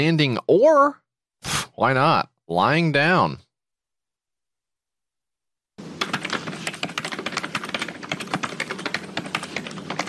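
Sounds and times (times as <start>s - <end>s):
speech: 0.0s - 3.4s
computer keyboard typing: 5.8s - 10.0s.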